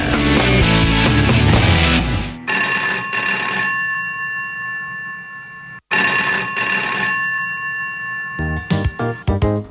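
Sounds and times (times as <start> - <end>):
busy music: 0.0 - 2.5, 8.4 - 9.6
telephone ringing at a counselling clinic: 2.5 - 9.4.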